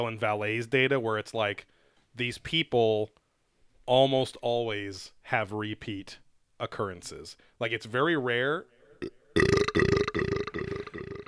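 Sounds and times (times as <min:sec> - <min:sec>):
speech: 0:00.0 - 0:03.2, 0:03.9 - 0:09.5
loud throaty belch: 0:09.0 - 0:11.2.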